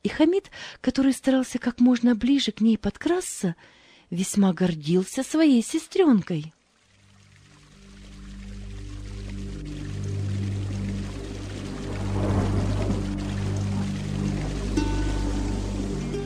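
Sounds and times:
speech: 0.2 - 6.6
heavy rain pouring on an evening: 7.1 - 16.2.

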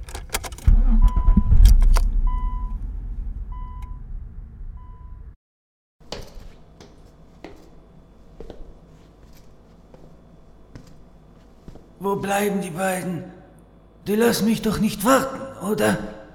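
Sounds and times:
car starting and pulling away with a deep engine rumble: 0.0 - 5.4
short high beeps: 0.8 - 1.6
speech: 12.0 - 13.4, 14.1 - 16.2.

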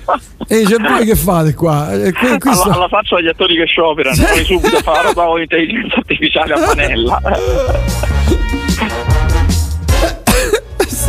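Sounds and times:
harsh raspy coughing fit: 0.0 - 1.2, 4.2 - 5.3, 6.4 - 9.3, 9.9 - 11.0
laughter: 0.0 - 1.2, 4.2 - 9.0
speech: 0.1 - 8.1.

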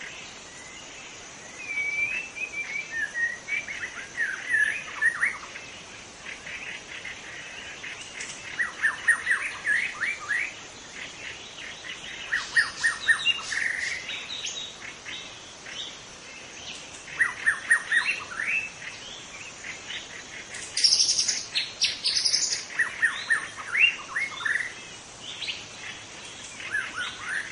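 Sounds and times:
White-rumped shama song in forest: 1.4 - 5.5, 8.2 - 10.6, 12.0 - 14.7, 17.1 - 18.7, 20.6 - 25.6, 26.5 - 27.4.

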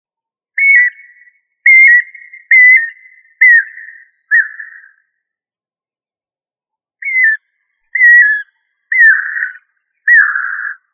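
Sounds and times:
bird song of clear whistled notes with downward slur: 0.6 - 5.0, 7.0 - 7.4, 8.0 - 10.8.

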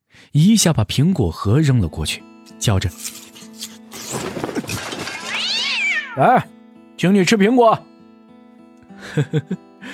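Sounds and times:
speech: 0.3 - 3.2, 6.2 - 7.9, 9.2 - 9.7
feral cat meowing on a wall top: 5.1 - 6.4.

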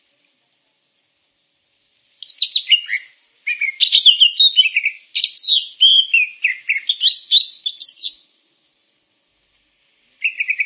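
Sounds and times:
grey-cheeked bulbul singing chattering slurred whistled notes: 2.2 - 8.3, 10.2 - 10.6.

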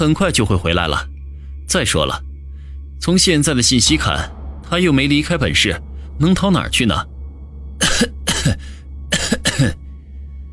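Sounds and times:
speech: 0.0 - 1.1, 1.7 - 2.3, 3.0 - 7.1, 8.0 - 8.8
sickly person coughing while clutching the chest: 7.8 - 9.9.

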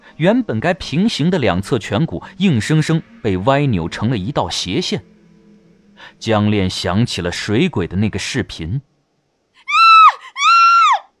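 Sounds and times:
speech: 0.2 - 5.1, 6.0 - 8.9
woman screaming: 9.6 - 11.1.

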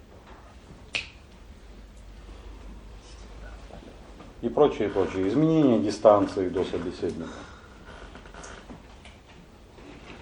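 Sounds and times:
low steady hiss: 0.0 - 10.1
finger snap: 0.9 - 1.2
speech: 4.4 - 7.5.

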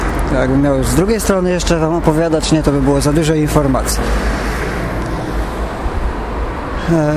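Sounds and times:
car rolling past on a street: 0.0 - 7.0
speech: 0.3 - 4.4, 6.9 - 7.1.

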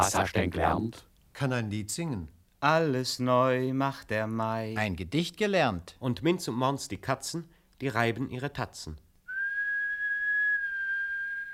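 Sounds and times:
speech: 0.0 - 9.0
person whistling one steady sustained high note: 9.3 - 11.5.

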